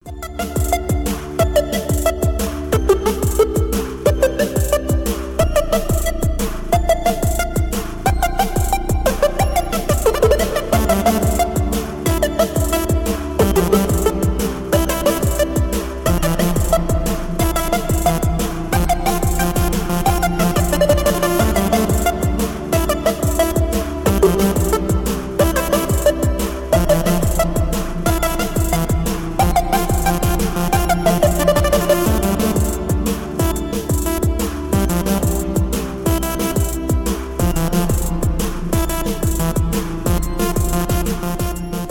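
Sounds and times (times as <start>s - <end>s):
electronic club bass drum: 0.0s - 41.8s.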